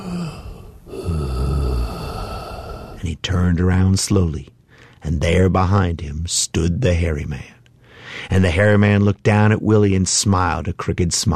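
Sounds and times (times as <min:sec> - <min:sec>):
deep heavy rumbling breathing: 0:00.0 - 0:03.1, 0:07.8 - 0:08.3
speech: 0:03.0 - 0:07.6, 0:08.3 - 0:11.3.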